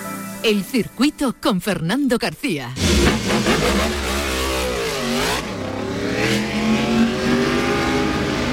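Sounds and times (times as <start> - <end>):
speech: 0.4 - 4.1
motorcycle engines revving loudly: 2.8 - 8.5.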